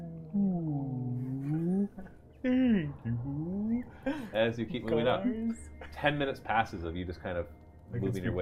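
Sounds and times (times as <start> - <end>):
human voice imitating a whale call: 0.0 - 3.8
speech: 2.4 - 3.5, 4.1 - 8.3.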